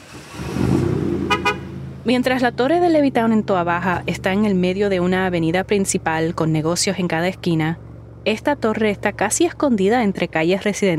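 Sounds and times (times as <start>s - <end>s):
car engine rumbling as a vehicle drives past: 0.0s - 10.9s
short bright car horn honks: 1.3s - 1.8s
speech: 2.0s - 10.9s.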